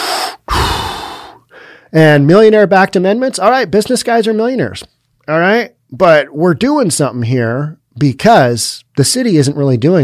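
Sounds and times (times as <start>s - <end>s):
person imitating deep menacing breathing: 0.0s - 1.8s
speech: 1.9s - 10.0s.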